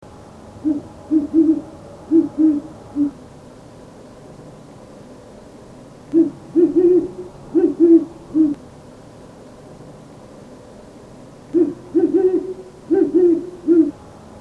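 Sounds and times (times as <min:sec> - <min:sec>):
great horned owl: 0:00.6 - 0:03.2, 0:06.1 - 0:08.6, 0:11.5 - 0:14.0.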